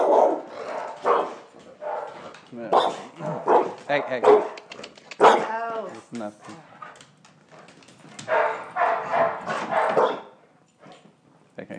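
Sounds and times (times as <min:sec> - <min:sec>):
dog barking: 0:00.0 - 0:05.5, 0:08.2 - 0:10.4
speech: 0:03.9 - 0:04.5, 0:06.1 - 0:06.8.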